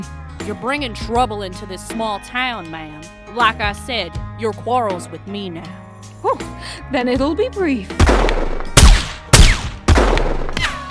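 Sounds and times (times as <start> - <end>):
speech: 0.0 - 8.5
gunshots in a small-town shootout: 8.0 - 10.8.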